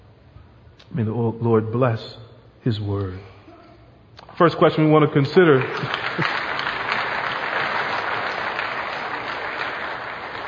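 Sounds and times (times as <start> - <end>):
speech: 0.9 - 3.3, 4.4 - 6.3
crowd applauding: 5.3 - 10.4.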